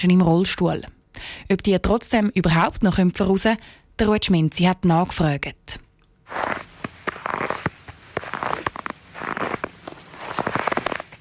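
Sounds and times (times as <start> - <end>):
speech: 0.0 - 6.6
footsteps crunching through snow: 6.3 - 11.1.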